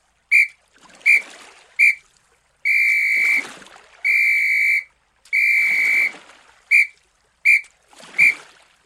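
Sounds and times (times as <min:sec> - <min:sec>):
faint water splashing: 0:00.0 - 0:08.8
shrill whistle blowing SOS signal: 0:00.3 - 0:01.2, 0:01.8 - 0:02.0, 0:02.7 - 0:03.4, 0:04.1 - 0:08.4.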